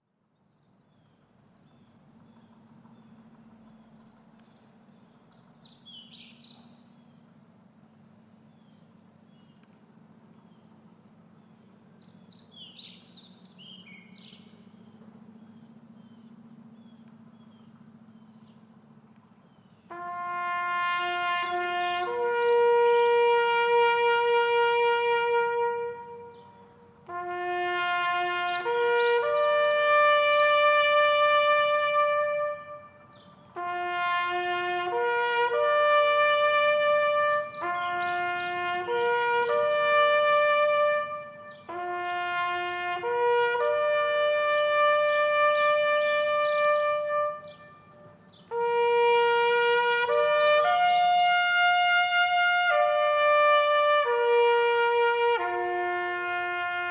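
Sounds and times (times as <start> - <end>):
bugle call by a drum and bugle corps: 12.6 - 56.8.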